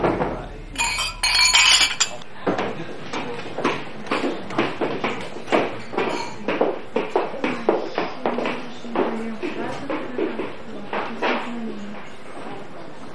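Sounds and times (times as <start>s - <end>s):
people talking: 0.0s - 13.1s
glasses clinking together in a toast at a meal: 0.7s - 2.3s, 5.8s - 6.7s.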